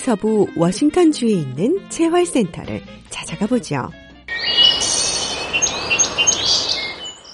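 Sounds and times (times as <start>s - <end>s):
speech: 0.0s - 4.0s
birds chirping and trilling at a rural farm: 4.3s - 7.3s.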